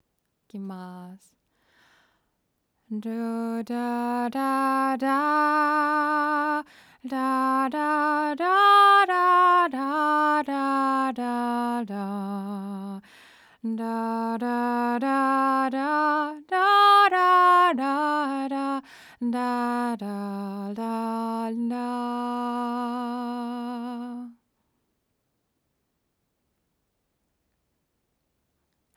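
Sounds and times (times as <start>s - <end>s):
vocal: 2.9s - 24.4s.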